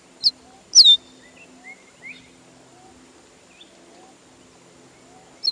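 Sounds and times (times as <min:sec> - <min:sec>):
bird giving sharp high downslurred whistles and short notes: 0:00.2 - 0:02.3
faint bird chirps: 0:00.2 - 0:04.2, 0:04.9 - 0:05.4.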